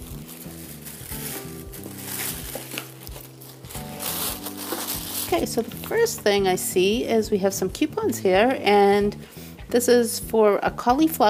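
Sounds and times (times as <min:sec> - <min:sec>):
polka dot wrapping paper crinkling and rustling: 0:00.0 - 0:06.2
soft music: 0:00.0 - 0:11.2
speech: 0:05.3 - 0:11.2.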